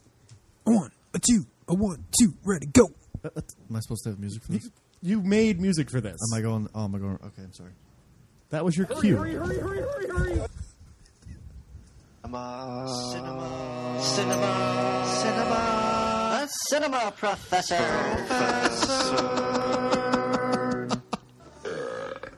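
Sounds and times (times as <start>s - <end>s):
speech: 0.7s - 7.9s, 8.5s - 10.5s, 12.3s - 19.4s
laughter: 13.6s - 21.6s
person belching out words in guttural burps: 18.4s - 22.3s.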